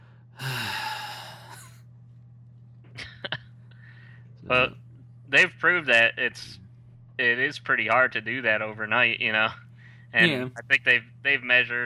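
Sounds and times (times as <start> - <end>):
person imitating the groan of a movie theater audience: 0.4 - 1.7, 10.2 - 10.6
speech: 4.5 - 6.6, 7.2 - 11.8.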